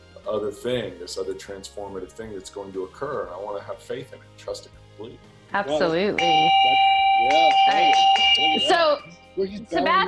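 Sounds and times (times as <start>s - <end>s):
speech: 0.2s - 10.0s
yak bell ringing: 6.2s - 9.1s.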